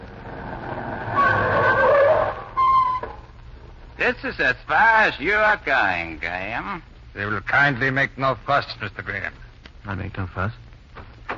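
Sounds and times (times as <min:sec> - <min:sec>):
low car engine rumble: 0:00.0 - 0:02.6
car tires screeching while braking hard: 0:00.0 - 0:03.3
speech: 0:04.0 - 0:10.6.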